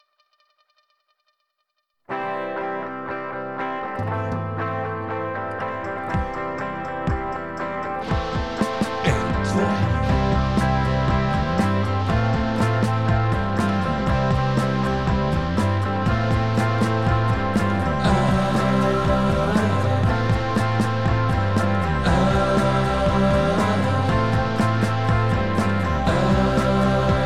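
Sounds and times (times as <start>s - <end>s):
fuzzy heavily effected distorted indie rock guitars: 2.1s - 27.2s
steady indie rock drums: 5.8s - 27.2s.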